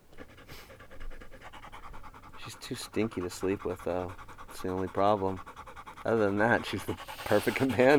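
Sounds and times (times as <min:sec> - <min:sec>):
female dog panting rapidly: 0:00.0 - 0:07.9
speech: 0:02.5 - 0:07.9.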